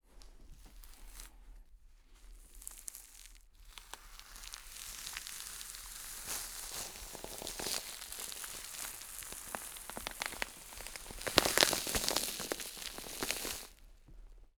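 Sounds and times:
deer skin being pulled off: 0:04.4 - 0:13.7.

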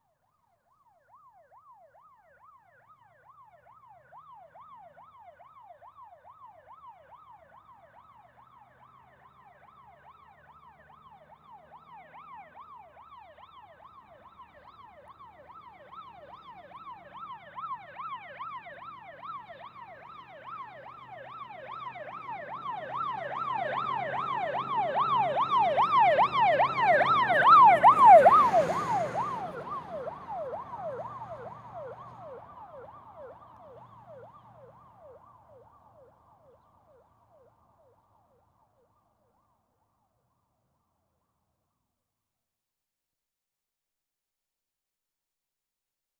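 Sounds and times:
fire engine siren yelp: 0:00.8 - 0:38.8
fire engine passing left to right: 0:06.7 - 0:37.9.

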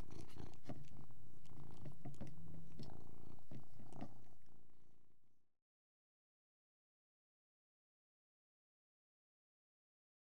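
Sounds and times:
Persian cat chewing noisily: 0:00.0 - 0:04.4
Persian cat purring while eating: 0:00.0 - 0:05.2.

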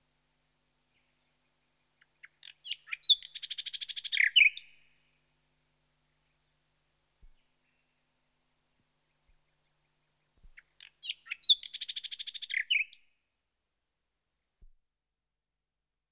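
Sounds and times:
common nightingale song: 0:00.8 - 0:05.0, 0:09.1 - 0:13.1.

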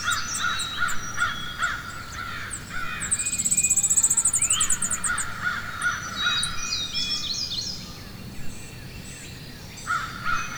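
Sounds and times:
crows cawing in a forest: 0:00.0 - 0:06.5
other birds chirping in a forest: 0:00.0 - 0:07.3
rapid high ticking trill: 0:02.0 - 0:05.9.

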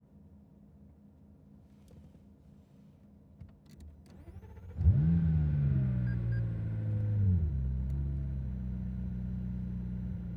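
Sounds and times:
2016 McLaren 570S engine starting, interior: 0:03.4 - 0:10.2.

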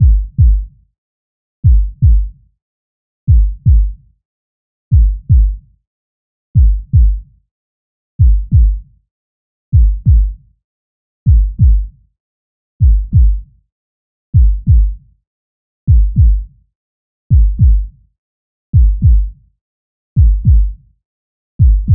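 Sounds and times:
heartbeat: 0:00.0 - 0:00.7, 0:01.6 - 0:02.4, 0:03.3 - 0:04.0, 0:04.9 - 0:05.6, 0:06.6 - 0:07.3, 0:08.2 - 0:08.9, 0:09.7 - 0:10.4, 0:11.3 - 0:12.0, 0:12.8 - 0:13.5, 0:14.4 - 0:15.0, 0:15.9 - 0:16.5, 0:17.3 - 0:18.0, 0:18.8 - 0:19.4, 0:20.2 - 0:20.8, 0:21.6 - 0:21.9.

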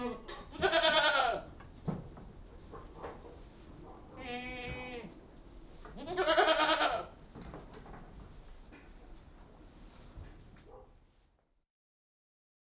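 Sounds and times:
goats bleating inside a goat house: 0:00.0 - 0:01.5, 0:04.2 - 0:05.1, 0:06.0 - 0:07.1
background sounds in a livestock shed: 0:00.0 - 0:11.6.

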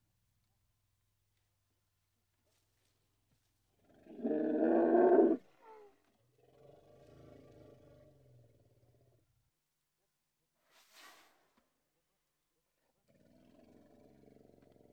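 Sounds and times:
Indian elephant roaring: 0:04.0 - 0:05.4.

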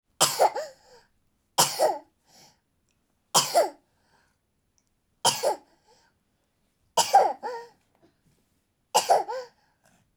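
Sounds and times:
baby toddler coughing: 0:00.2 - 0:00.8, 0:01.6 - 0:02.1, 0:03.4 - 0:03.8, 0:05.3 - 0:05.7, 0:07.0 - 0:07.8, 0:09.0 - 0:09.6.

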